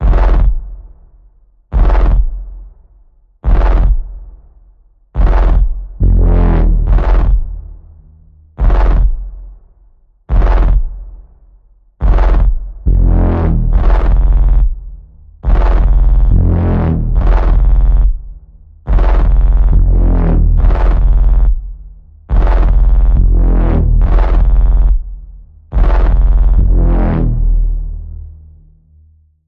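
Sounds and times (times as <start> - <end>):
evil warping bass pulse in the key of F: 0.0 - 0.9, 1.7 - 2.6, 3.4 - 4.3, 5.2 - 9.7, 10.3 - 11.4, 12.0 - 29.2.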